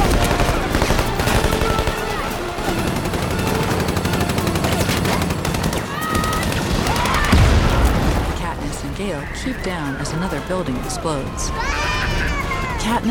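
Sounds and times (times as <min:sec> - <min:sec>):
crowd shouting voices: 0:00.0 - 0:08.0, 0:09.2 - 0:13.1
sustained gunfire in rapid bursts: 0:00.0 - 0:09.0
chaotic noise: 0:00.0 - 0:13.1
speech: 0:09.5 - 0:13.1.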